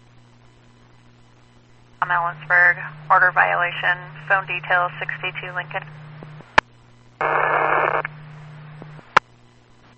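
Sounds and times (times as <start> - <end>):
speech: 2.0 - 6.0
low hum: 2.0 - 9.2
unreadable static on a radio transmission: 2.0 - 9.2.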